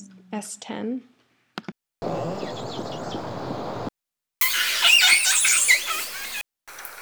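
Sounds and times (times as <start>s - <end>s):
orca squealing calls: 4.4s - 6.4s.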